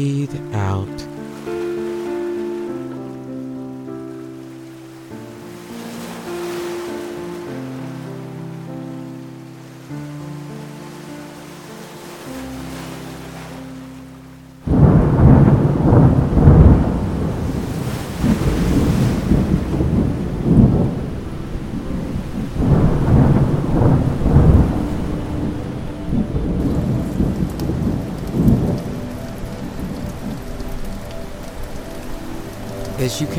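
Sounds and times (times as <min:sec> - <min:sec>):
speech: 0:00.0 - 0:01.1, 0:33.1 - 0:33.3
steady rain hissing and pattering: 0:00.0 - 0:33.3
deep rolls of thunder: 0:14.7 - 0:33.2.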